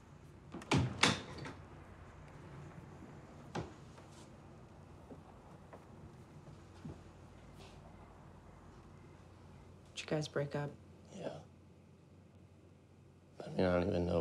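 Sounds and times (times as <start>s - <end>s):
bedroom door being shut: 0.5s - 1.6s
speech: 10.0s - 10.8s, 13.6s - 14.1s.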